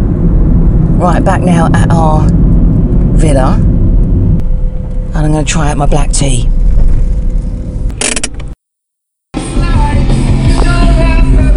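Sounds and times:
low rumble inside an older Polo car on the move: 0.0 - 8.6, 9.5 - 11.5
speech: 1.0 - 2.5, 3.2 - 3.7, 5.2 - 6.6
music playing in a car: 9.4 - 11.5.

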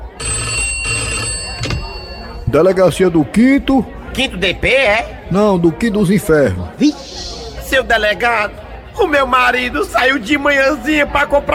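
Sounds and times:
telephone bell ringing in a police station: 0.0 - 2.4
speech: 2.5 - 11.5.

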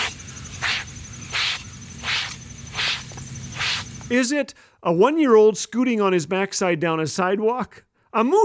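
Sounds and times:
hairbrush rubbed over a bald head: 0.0 - 4.0
speech: 4.1 - 8.4.

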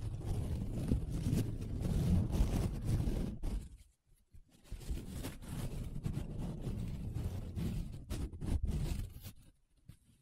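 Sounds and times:
paper rubbed and scratched in long strokes: 0.0 - 3.9, 4.5 - 10.2.

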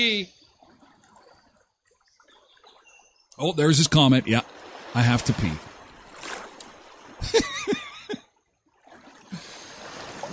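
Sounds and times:
speech: 0.0 - 0.4, 3.4 - 5.7, 7.2 - 7.8
faint bird chirps: 0.0 - 3.7
outdoor flowing water trickling and babbling: 0.0 - 10.3
laughter: 7.2 - 8.2.

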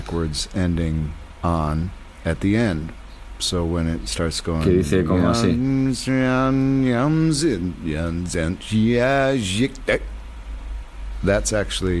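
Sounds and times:
steady low hum: 0.0 - 11.9
speech: 0.1 - 10.1, 11.2 - 11.9
singing voice played in reverse: 4.6 - 10.0.

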